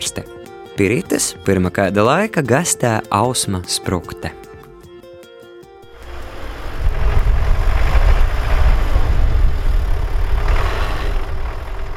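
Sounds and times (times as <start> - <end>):
speech: 0.1 - 4.5
tractor engine rumbling while hauling hay on a farm in Latvia: 5.9 - 11.9.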